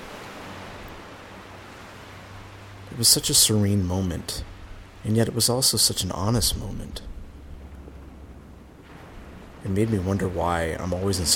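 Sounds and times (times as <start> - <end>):
water lapping at a shore: 0.0 - 11.3
wind blowing: 0.0 - 11.3
speech: 2.9 - 7.2, 9.6 - 11.3.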